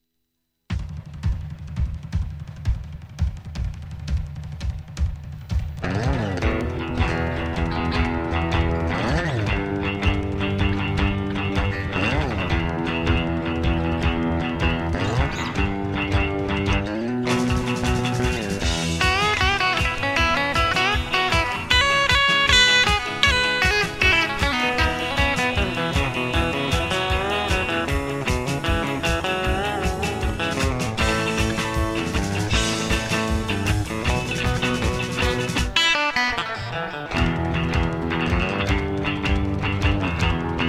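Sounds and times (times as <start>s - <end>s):
driving guitar on a modified Stratocaster: 0.7s - 40.6s.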